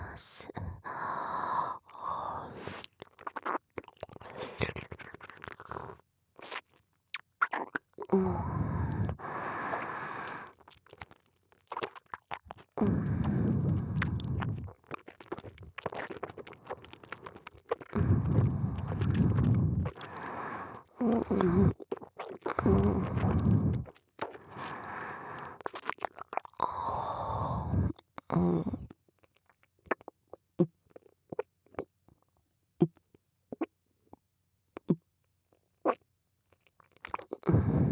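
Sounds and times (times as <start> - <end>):
swallowing gulps: 1.6 - 34.2, 34.8 - 35.1, 36.6 - 37.8
moist chewing of food: 1.9 - 8.2, 9.0 - 12.8, 13.9 - 26.6, 36.5 - 37.5.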